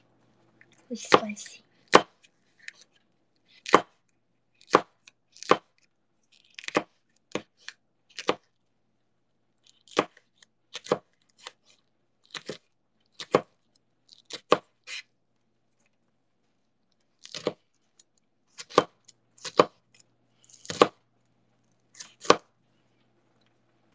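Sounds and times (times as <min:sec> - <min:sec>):
speech: 0:00.9 - 0:01.7
knife chopping spicy peppers on a board: 0:01.0 - 0:02.2, 0:03.6 - 0:04.0, 0:04.6 - 0:05.8, 0:06.6 - 0:08.5, 0:09.9 - 0:11.6, 0:12.3 - 0:13.6, 0:14.3 - 0:15.0, 0:17.2 - 0:17.6, 0:18.6 - 0:19.8, 0:20.6 - 0:21.0, 0:22.0 - 0:22.5.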